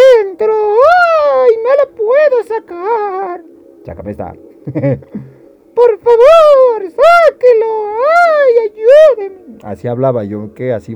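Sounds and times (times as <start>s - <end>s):
voice imitating a crying baby: 0.0s - 3.4s, 5.8s - 9.6s
speech: 3.9s - 10.9s
laughter: 4.6s - 5.1s.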